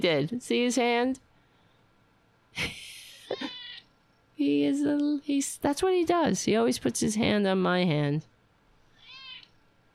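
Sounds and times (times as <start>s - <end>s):
speech: 0.0s - 1.3s, 2.6s - 3.6s, 4.4s - 8.3s
cat meowing: 3.3s - 3.8s, 9.0s - 9.5s.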